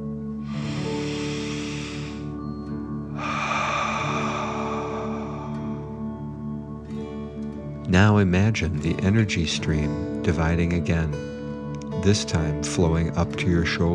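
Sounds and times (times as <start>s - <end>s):
steady low droning music bed: 0.0s - 13.9s
deep breath in and out during a guided breathing exercise: 0.4s - 7.6s
speech: 7.9s - 11.3s, 12.0s - 13.9s.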